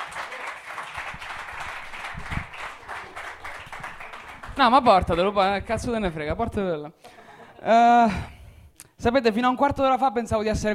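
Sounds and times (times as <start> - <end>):
audience applause welcoming a first-time performer at a comedy show: 0.0 - 5.2
speech: 4.6 - 8.3, 9.0 - 10.7.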